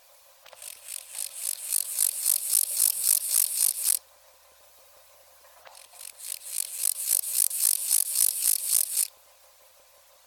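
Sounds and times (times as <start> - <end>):
Pseudochorthippus montanus stridulating: 0.4 - 4.0, 5.6 - 9.1.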